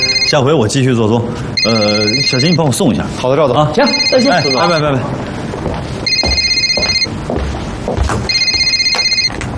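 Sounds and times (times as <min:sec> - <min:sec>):
telephone ringing in rapid electronic trills: 0:00.0 - 0:00.6, 0:01.6 - 0:02.8, 0:03.8 - 0:05.1, 0:06.0 - 0:07.2, 0:08.3 - 0:09.4
speech: 0:00.3 - 0:05.9.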